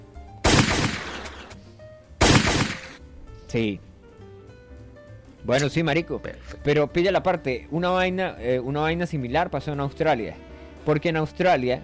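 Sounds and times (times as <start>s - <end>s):
gunshots from sniper target shooting: 0.4s - 1.6s, 2.2s - 3.0s
speech: 3.5s - 3.9s, 5.4s - 11.8s.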